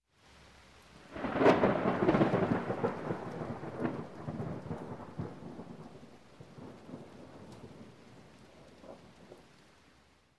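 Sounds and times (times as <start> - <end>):
rain heard in a building: 0.0 - 10.3
thunder clap heard in a building: 1.1 - 9.4.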